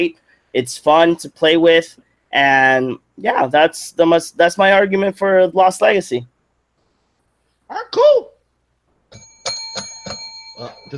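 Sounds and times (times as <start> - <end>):
speech: 0.0 - 6.3, 7.7 - 8.3, 10.6 - 10.9
bell ringing: 9.1 - 10.9.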